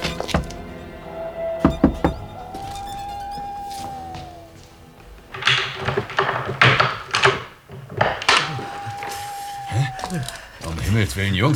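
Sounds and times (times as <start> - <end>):
faint tones: 0.0 - 11.5
knocking on a house door: 1.6 - 2.3
speech: 11.1 - 11.5.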